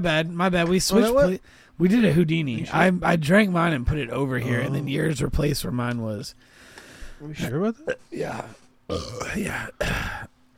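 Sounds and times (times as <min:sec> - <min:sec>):
speech: 0:00.0 - 0:10.3
person burping after drinking beer: 0:07.8 - 0:10.3.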